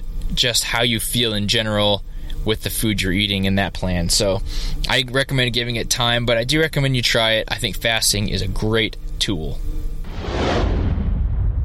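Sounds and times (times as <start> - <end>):
speech: 0.4 - 9.8
whoosh transition sound effect with deep rumbling tail: 10.1 - 11.6.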